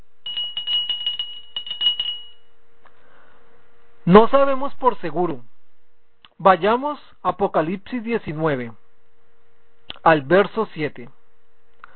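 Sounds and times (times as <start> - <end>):
small bell rung rapidly: 0.2 - 2.5
speech: 4.1 - 5.5, 6.4 - 8.8, 10.0 - 11.2.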